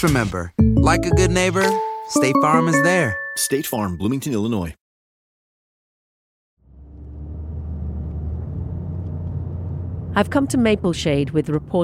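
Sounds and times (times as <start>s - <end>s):
speech: 0.0s - 4.8s, 10.2s - 11.8s
car engine and road rumble driving through a small-town neighborhood: 6.6s - 11.8s.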